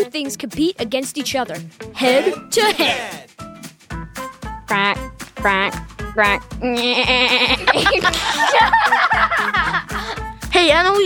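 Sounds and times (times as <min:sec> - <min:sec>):
speech: 0:00.0 - 0:03.2, 0:04.7 - 0:11.0
laughter: 0:02.0 - 0:03.3, 0:07.0 - 0:10.2
voice imitating goat bleats: 0:02.0 - 0:03.3, 0:04.7 - 0:07.8.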